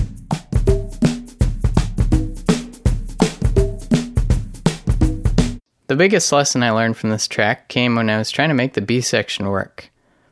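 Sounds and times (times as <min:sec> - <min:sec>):
MIDI drum kit groove: 0:00.0 - 0:05.6
tuned MIDI conga tones: 0:00.0 - 0:05.6
speech: 0:05.9 - 0:09.9.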